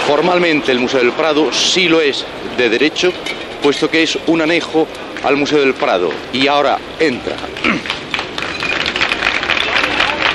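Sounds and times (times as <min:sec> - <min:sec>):
faint murmur of voices: 0:00.0 - 0:10.3
speech: 0:00.1 - 0:08.0
crowd of spectators applauding in Madrid: 0:07.2 - 0:10.3.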